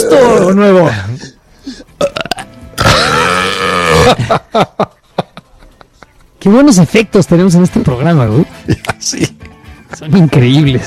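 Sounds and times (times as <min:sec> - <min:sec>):
speech: 0:00.1 - 0:02.2, 0:04.0 - 0:04.9, 0:06.4 - 0:09.3, 0:09.9 - 0:10.8
vocal bursts: 0:02.0 - 0:04.2
long loud guttural burp: 0:02.0 - 0:04.3
laughter: 0:03.9 - 0:06.4, 0:08.6 - 0:09.4.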